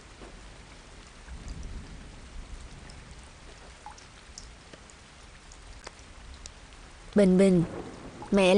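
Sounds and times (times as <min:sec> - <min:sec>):
steady rain pouring down outside: 0:00.0 - 0:08.5
speech: 0:07.2 - 0:08.5.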